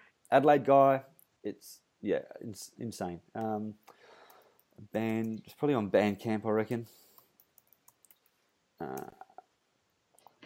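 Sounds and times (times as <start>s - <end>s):
speech: 0.3s - 3.9s, 4.8s - 7.0s, 8.8s - 9.2s
typing loudly on a computer keyboard: 7.2s - 9.1s.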